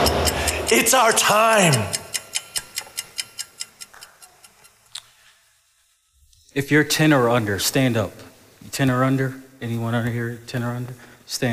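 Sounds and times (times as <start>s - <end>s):
clock ticking: 0.0s - 5.1s
speech: 0.7s - 2.0s, 6.6s - 11.5s.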